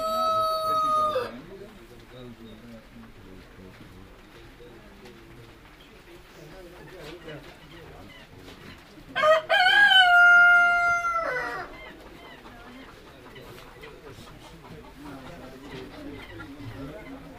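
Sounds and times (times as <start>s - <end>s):
loud rooster crow: 0.0s - 1.3s, 9.2s - 11.7s
hens clucking and chattering at Campsea: 0.0s - 17.3s.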